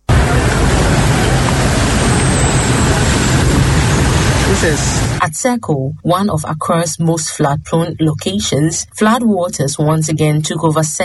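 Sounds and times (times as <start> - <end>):
dense road traffic rumbling in a stalled queue: 0.0 - 5.3
speech: 4.6 - 11.0.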